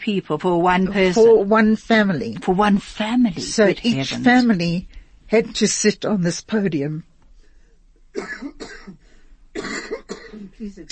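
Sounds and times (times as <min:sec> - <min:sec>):
speech: 0:00.0 - 0:07.1, 0:10.6 - 0:10.9
person coughing: 0:08.2 - 0:09.0, 0:09.6 - 0:10.6.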